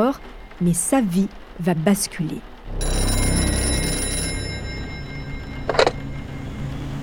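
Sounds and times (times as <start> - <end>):
speech: 0.0 - 2.9
telephone bell ringing in a metallic trill: 2.7 - 7.0.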